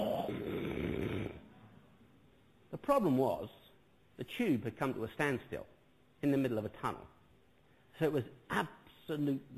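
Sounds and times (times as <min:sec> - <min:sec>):
man imitating a rattling snore with his voice: 0:00.0 - 0:01.5
speech: 0:02.8 - 0:03.6, 0:04.2 - 0:07.2, 0:08.0 - 0:09.5.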